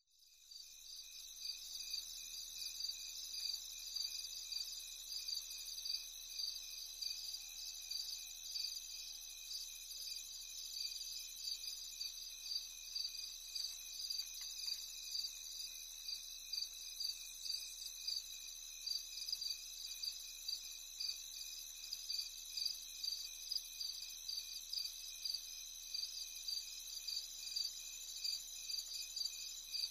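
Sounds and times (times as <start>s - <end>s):
thick chorus of crickets: 0.2s - 29.8s.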